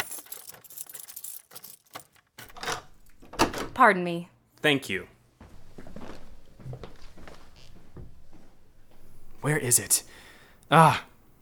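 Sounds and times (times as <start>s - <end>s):
bunch of keys jangling: 0.0s - 2.5s
speech: 3.8s - 5.1s, 9.5s - 11.1s.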